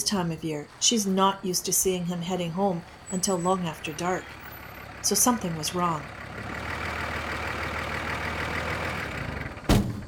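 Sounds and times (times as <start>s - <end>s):
speech: 0.0s - 4.4s, 5.0s - 6.6s
tractor engine rumbling as it pulls into the yard: 0.0s - 10.0s
single sharp heavy thump: 9.6s - 10.0s.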